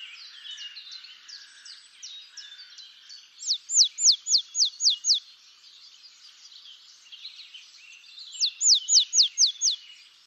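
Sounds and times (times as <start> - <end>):
willow tit singing descending whistled notes: 3.4 - 5.2, 8.4 - 9.8
busy background twittering: 3.4 - 5.3, 8.4 - 9.8.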